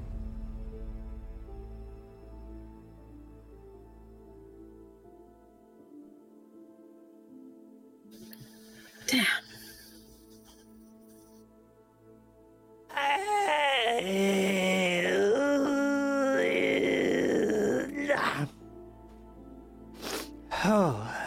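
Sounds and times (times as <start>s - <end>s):
person groaning while stretching: 8.9s - 9.9s, 12.9s - 18.6s, 20.5s - 21.2s.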